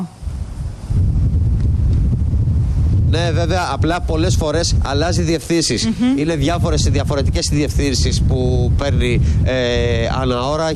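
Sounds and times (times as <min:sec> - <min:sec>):
northwest maistros wind blowing outdoors in a wildfire-hit area: 0:00.0 - 0:10.7
speech: 0:03.1 - 0:10.7.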